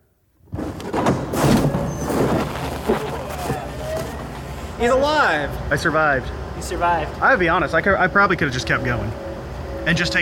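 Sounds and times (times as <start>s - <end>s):
heavy door grinding and scraping open: 0.6s - 2.9s
speech: 4.8s - 9.2s, 9.8s - 10.2s.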